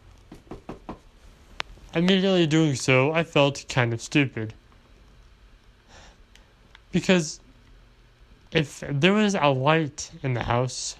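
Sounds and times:
soft knocking on the wooden door of a house: 0:00.3 - 0:01.1
speech: 0:02.0 - 0:04.6, 0:06.9 - 0:07.4, 0:08.5 - 0:10.9.

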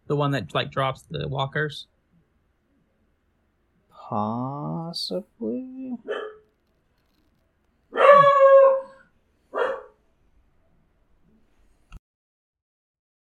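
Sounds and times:
speech: 0:00.1 - 0:01.9, 0:04.1 - 0:06.2
dog barking and howling: 0:06.0 - 0:06.5, 0:07.9 - 0:10.0.

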